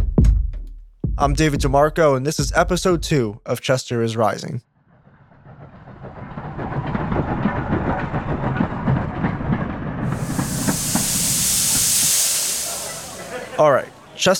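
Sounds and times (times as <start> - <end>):
speech: 1.2 - 4.7, 13.6 - 14.3
train wheels clattering on rails: 5.4 - 13.6
steam hissing: 10.0 - 14.2.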